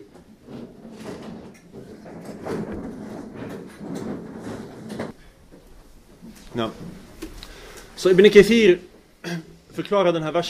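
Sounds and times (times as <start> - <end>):
chairs being set out and moved forward across a floor: 0.0 - 8.3
speech: 6.6 - 7.0, 8.0 - 8.9, 9.8 - 10.4.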